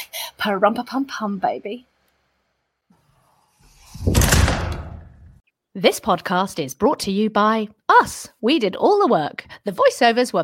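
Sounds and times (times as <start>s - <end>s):
speech: 0.4s - 1.9s, 5.8s - 10.4s
door opening and closing: 3.6s - 5.4s
low rumbling thuds: 3.9s - 5.4s.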